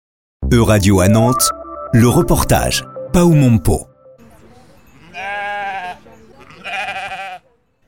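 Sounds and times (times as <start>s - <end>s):
speech: 0.5s - 3.9s
low murmur: 4.2s - 7.8s
sheep from a flock bleating in a floral park in Nantes: 5.0s - 7.6s.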